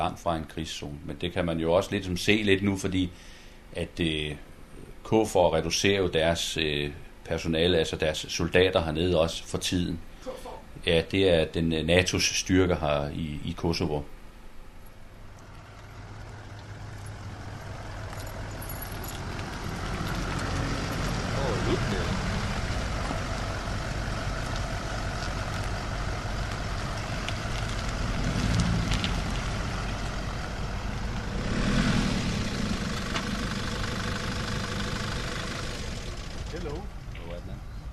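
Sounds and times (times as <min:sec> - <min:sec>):
speech: 0:00.0 - 0:14.2
heavy armored car engine running in Kosovo: 0:15.0 - 0:37.9.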